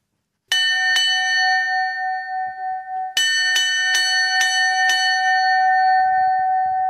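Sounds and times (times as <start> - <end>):
hand-rung bell clanging to summon the ferryman: 0.5 - 6.8.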